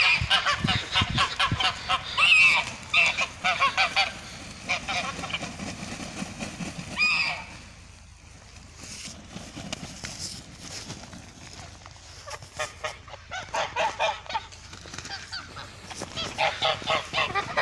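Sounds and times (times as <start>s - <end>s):
geese giving quiet nasal honks: 0.0s - 7.8s, 12.0s - 17.6s
rustling: 0.8s - 17.6s.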